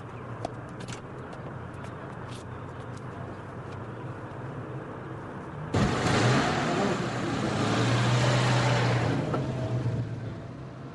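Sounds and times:
car engine revving as the vehicle pulls away: 0:05.7 - 0:10.3.

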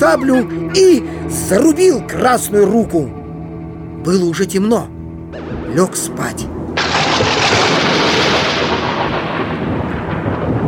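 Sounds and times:
speech: 0:00.0 - 0:03.2, 0:04.0 - 0:06.5
thunderstorm with strong wind at midnight: 0:06.5 - 0:10.6.

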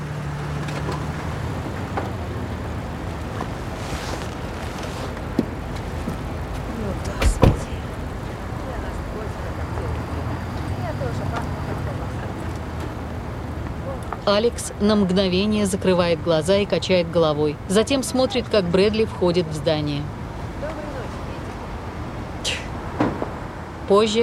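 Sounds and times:
SUV engine rumbling as it pulls up and stops: 0:00.0 - 0:24.2
speech: 0:14.3 - 0:20.2, 0:23.9 - 0:24.2
short sharp knocks: 0:23.0 - 0:23.4.

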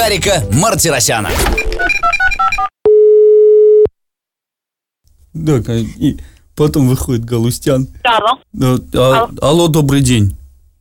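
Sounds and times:
speech: 0:00.0 - 0:02.0, 0:05.4 - 0:10.4
telephone tones as a call is placed: 0:02.0 - 0:03.9.

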